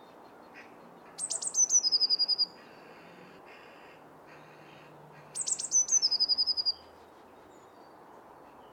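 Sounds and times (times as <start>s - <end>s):
Eurasian blue tit Cyanistes caeruleus singing with descending trills: 0.0s - 2.6s, 5.4s - 8.7s
faint background noise: 0.0s - 8.7s.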